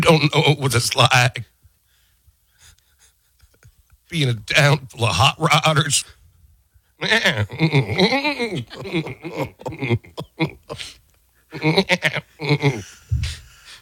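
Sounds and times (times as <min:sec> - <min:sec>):
speech: 0:00.1 - 0:01.5, 0:04.1 - 0:06.2, 0:07.0 - 0:13.4
man imitating goat bleats: 0:07.0 - 0:11.0, 0:11.6 - 0:12.8.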